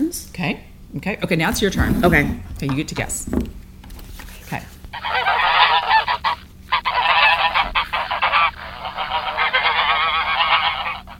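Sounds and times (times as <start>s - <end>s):
speech: 0.1s - 3.5s, 4.5s - 4.7s
goose honking: 4.9s - 11.1s.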